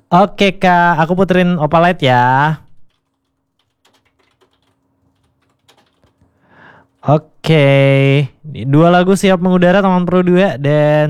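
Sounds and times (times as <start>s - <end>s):
speech: 0.1s - 2.6s, 7.0s - 11.0s
typing on a computer keyboard: 2.8s - 8.4s.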